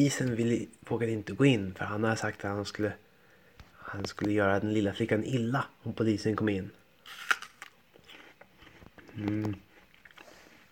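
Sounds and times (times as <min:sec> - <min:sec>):
speech: 0:00.0 - 0:03.1, 0:03.9 - 0:07.3, 0:09.2 - 0:09.7
quiet crunchy chewing on an apple: 0:07.1 - 0:10.7.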